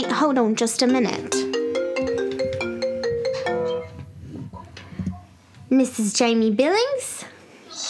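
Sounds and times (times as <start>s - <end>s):
speech: 0.0s - 1.6s, 5.8s - 7.2s
melodic phone ringtone of bright synthesized tones: 0.0s - 4.0s.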